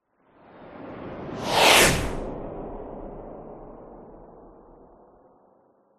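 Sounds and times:
science fiction space fighter flying past very fast: 0:01.4 - 0:02.4.

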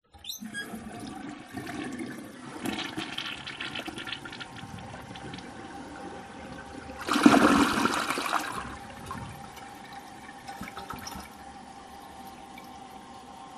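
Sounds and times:
squeaky toilet plunger: 0:00.1 - 0:01.1
toilet flushing: 0:00.1 - 0:13.4.

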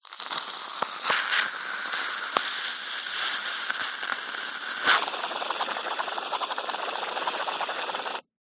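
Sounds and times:
short squirt of food cream from a can: 0:00.0 - 0:08.2.

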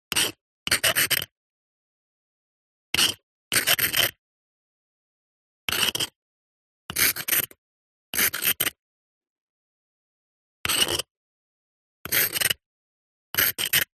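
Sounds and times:
thin chisel handwriting on stone: 0:00.1 - 0:01.3, 0:03.0 - 0:04.2, 0:05.7 - 0:06.2, 0:06.9 - 0:07.6, 0:08.2 - 0:08.8, 0:10.6 - 0:11.1, 0:12.0 - 0:12.6, 0:13.4 - 0:13.9.

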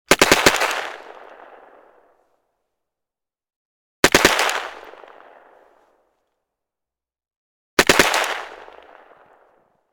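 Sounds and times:
Carl Gustav M45 Swedish K submachine gun firing: 0:00.1 - 0:01.8, 0:04.0 - 0:05.4, 0:07.8 - 0:09.6.

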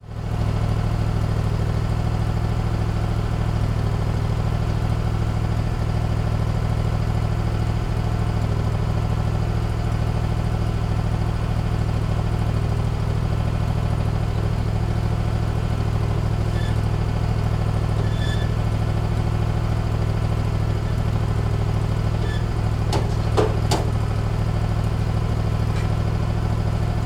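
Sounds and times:
industrial generator or diesel machine engine idling: 0:00.1 - 0:27.0
workmen operating beside the generator: 0:22.2 - 0:24.0, 0:25.6 - 0:26.0.

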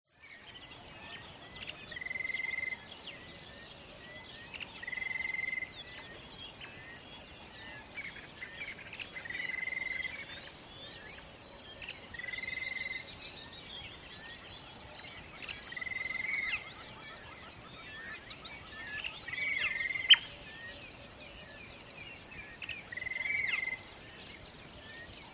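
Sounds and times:
bush ambience at a water hole in the early morning: 0:00.1 - 0:25.3.

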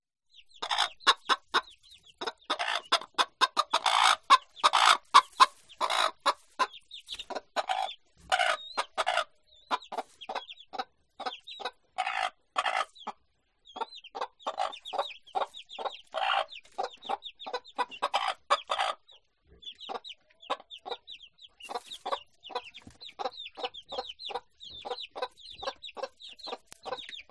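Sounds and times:
chickens on a bird farm: 0:00.3 - 0:27.2.

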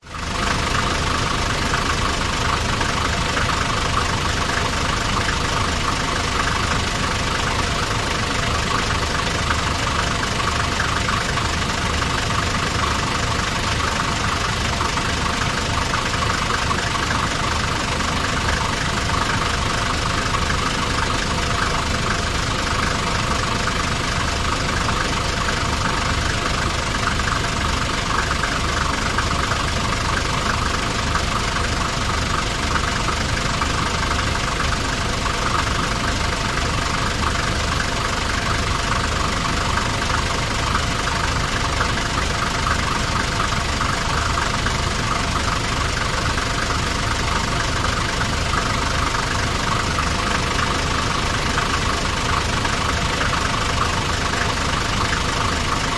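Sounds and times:
truck engine idling: 0:00.0 - 0:55.9.

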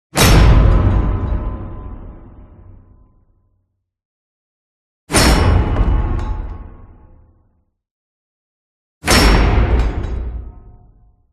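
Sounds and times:
cinematic metal impact hit: 0:00.1 - 0:03.3, 0:05.1 - 0:07.3, 0:09.0 - 0:11.0.

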